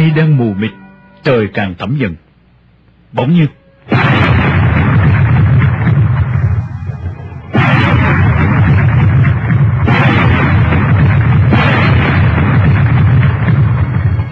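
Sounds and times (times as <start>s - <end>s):
speech: 0.2s - 2.3s, 3.1s - 3.6s
loud gunshots: 3.9s - 14.3s.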